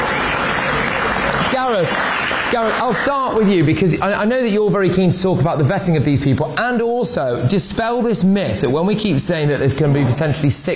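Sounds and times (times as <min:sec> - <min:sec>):
studio audience clapping: 0:00.0 - 0:03.9
speech: 0:01.6 - 0:10.7.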